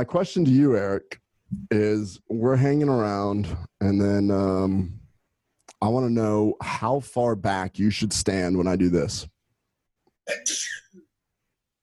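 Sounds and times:
speech: 0.0 - 5.0, 5.8 - 9.3, 10.3 - 10.8
person sneezing: 10.3 - 10.9.

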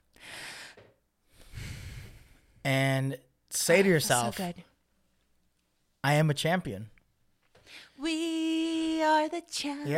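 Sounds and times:
slow deep human breath: 0.2 - 2.6
speech: 2.7 - 4.7, 6.0 - 7.0, 9.0 - 9.9.

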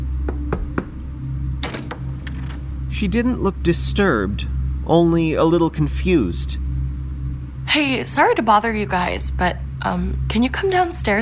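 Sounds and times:
low steady hum: 0.0 - 11.2
knocking on a door: 0.2 - 1.0
speech: 2.9 - 6.6, 7.7 - 11.2.

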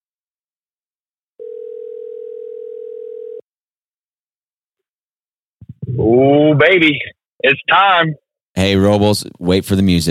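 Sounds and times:
steady telephone ringback tone: 1.4 - 3.5
speech: 6.0 - 10.1.

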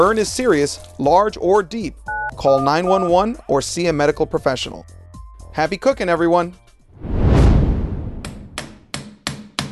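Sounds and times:
speech: 0.0 - 5.0, 5.6 - 7.1
broad whooshing rush: 7.0 - 8.8.

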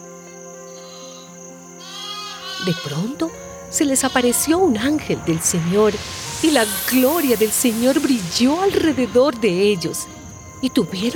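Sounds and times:
sheep bleating: 1.8 - 3.0
speech: 2.6 - 11.1.

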